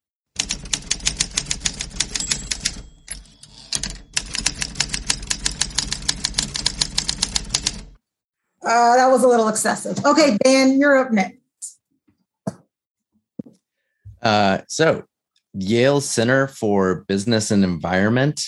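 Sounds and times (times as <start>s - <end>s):
typewriter typing: 0.4s - 8.0s
speech: 8.7s - 11.4s, 14.2s - 18.4s.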